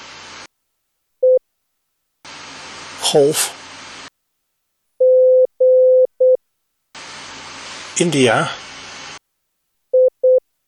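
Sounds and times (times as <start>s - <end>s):
loud static hiss: 0.0s - 0.5s, 2.2s - 4.2s, 6.9s - 9.3s
speech: 3.0s - 3.6s, 8.0s - 8.7s
Morse code beep tone: 5.0s - 6.4s.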